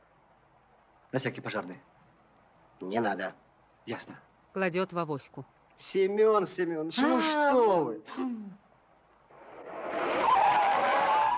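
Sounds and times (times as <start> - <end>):
speech: 1.1 - 2.0, 2.8 - 8.6
car tires squealing braking to a stop at a traffic light: 9.4 - 11.3.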